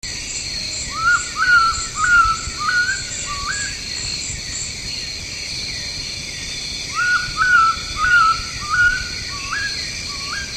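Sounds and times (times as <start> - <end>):
insects buzzing in tropical Asia: 0.1 - 10.5
Oriental bay owl whistled call in tropical Asia: 0.9 - 3.7, 6.9 - 10.5.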